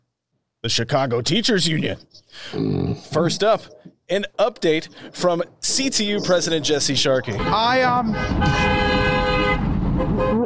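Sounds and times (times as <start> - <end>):
speech: 0.6 - 9.1
loud sustained truck horn blaring: 7.3 - 10.4.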